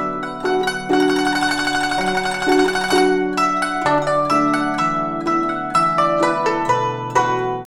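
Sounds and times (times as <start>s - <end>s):
guzheng playing at 124 bpm: 0.0s - 7.7s.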